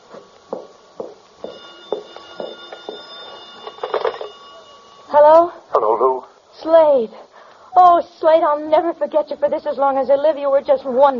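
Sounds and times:
telephone bell ringing: 0:01.4 - 0:05.5
speech: 0:06.6 - 0:11.1.

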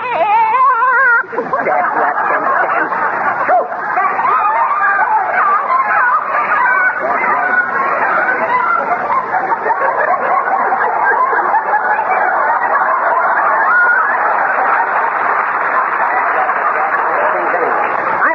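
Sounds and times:
crowd of chickens clucking and squawking: 0:00.0 - 0:15.0
laughter: 0:00.0 - 0:18.3.

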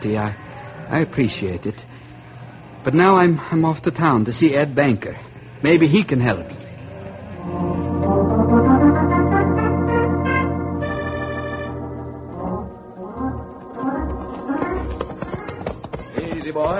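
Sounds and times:
speech: 0:00.0 - 0:02.0, 0:02.8 - 0:06.6
sustained horn-like tone: 0:07.4 - 0:15.0
galloping horse hooves clip-clopping: 0:13.5 - 0:16.7.

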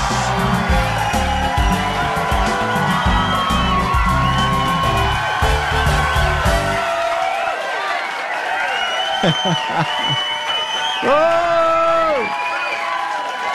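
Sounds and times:
group cheering and whooping: 0:00.0 - 0:13.5
laughter: 0:09.0 - 0:10.4
speech: 0:09.2 - 0:10.3, 0:11.0 - 0:12.4
man yelling his signature yell: 0:11.0 - 0:12.3.

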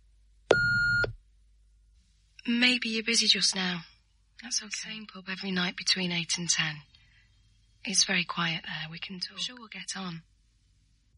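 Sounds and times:
answering machine beep before leaving a message: 0:00.5 - 0:01.2
speech: 0:02.5 - 0:06.9, 0:07.8 - 0:10.3.

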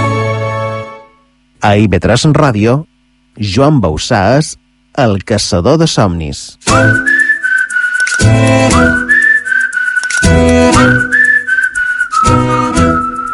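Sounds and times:
speech: 0:01.6 - 0:07.2, 0:08.2 - 0:09.0
person whistling a tune: 0:06.7 - 0:13.3.

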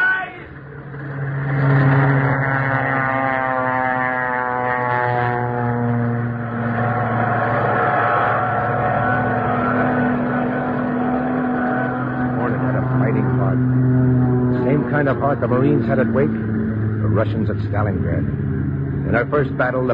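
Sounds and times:
warplane engines roaring as aircraft take off from a carrier: 0:00.0 - 0:19.9
speech: 0:15.3 - 0:16.4, 0:17.2 - 0:18.4, 0:19.0 - 0:19.9.

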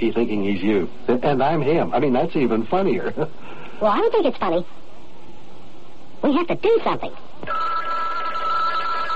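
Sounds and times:
speech: 0:00.0 - 0:04.8, 0:06.2 - 0:07.7
telephone ringing with a continuous electric trill: 0:07.4 - 0:09.1.

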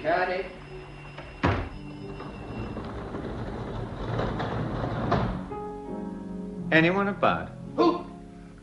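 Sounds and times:
speech: 0:00.0 - 0:00.7, 0:06.7 - 0:08.1
front door opening with a heavy thunk: 0:01.2 - 0:05.5.

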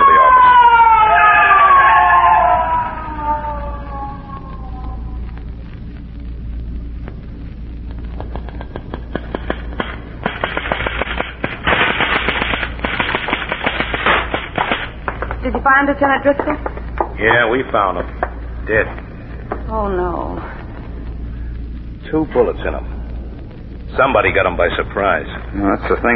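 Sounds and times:
ambulance siren wailing: 0:00.0 - 0:05.4
sharp crackling clicks: 0:02.7 - 0:19.8, 0:20.4 - 0:26.1
speech: 0:15.9 - 0:18.0, 0:18.7 - 0:19.0, 0:19.7 - 0:20.6, 0:22.1 - 0:22.9, 0:24.0 - 0:26.1.

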